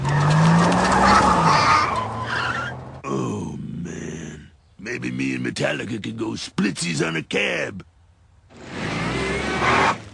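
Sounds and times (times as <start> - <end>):
school bus tires screeching as it pulls away: 0.0 - 3.0, 8.5 - 10.1
speech: 5.6 - 7.9.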